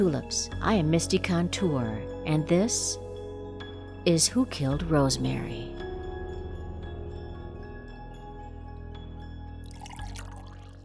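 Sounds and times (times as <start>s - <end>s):
speech: 0.0s - 3.0s, 4.0s - 5.8s
coffee pouring into a cup: 9.6s - 10.8s.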